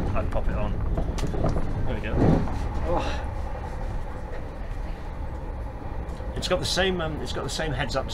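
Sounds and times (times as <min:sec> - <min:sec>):
rumble and whoosh of a moving train inside a carriage: 0:00.0 - 0:08.1
speech: 0:00.2 - 0:03.3, 0:06.4 - 0:08.1.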